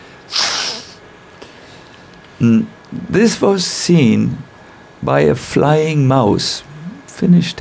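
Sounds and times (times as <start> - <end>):
sneeze: 0.3 - 1.0
speech: 2.4 - 7.5.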